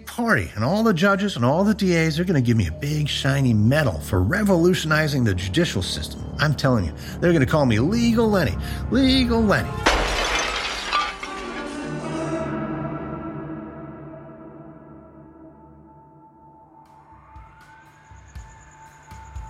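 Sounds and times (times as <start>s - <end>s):
speech: 0.2s - 10.1s
glass window shattering: 9.8s - 12.0s.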